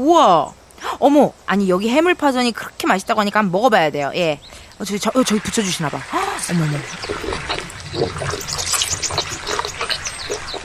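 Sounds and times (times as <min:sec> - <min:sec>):
speech: 0:00.0 - 0:09.3
giant panda chewing a carrot: 0:07.0 - 0:10.6.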